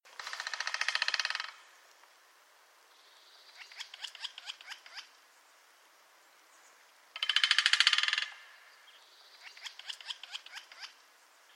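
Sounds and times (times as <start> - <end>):
great spotted woodpecker: 0.1 - 1.7, 3.4 - 5.1, 7.2 - 11.0.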